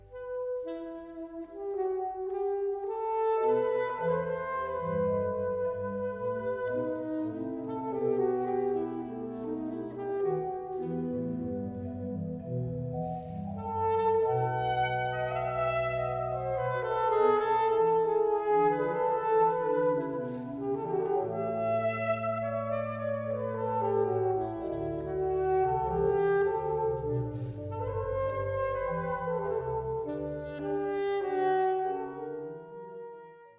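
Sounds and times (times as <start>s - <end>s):
saxophone in a church: 0.0s - 33.5s.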